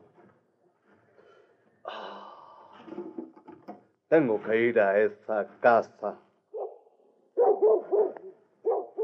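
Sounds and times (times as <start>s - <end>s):
speech: 4.1s - 6.2s
dog barking at a house: 6.5s - 9.0s.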